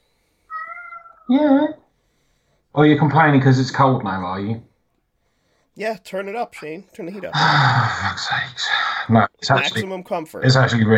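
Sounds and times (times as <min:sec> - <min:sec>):
cat meowing: 0:00.5 - 0:01.7
speech: 0:01.3 - 0:01.8, 0:02.8 - 0:04.7, 0:05.8 - 0:10.9.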